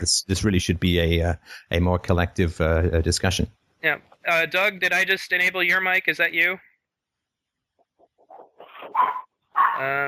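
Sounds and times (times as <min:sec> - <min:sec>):
speech: 0:00.0 - 0:06.7, 0:08.8 - 0:10.0
small Chihuahua dog yelping: 0:08.3 - 0:10.0.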